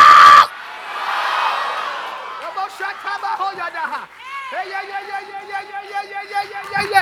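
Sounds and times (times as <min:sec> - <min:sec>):
individual yells and whoops: 0:00.0 - 0:00.5, 0:04.2 - 0:05.4
large crowd screaming and shouting: 0:00.0 - 0:06.9
laughter: 0:01.6 - 0:06.9.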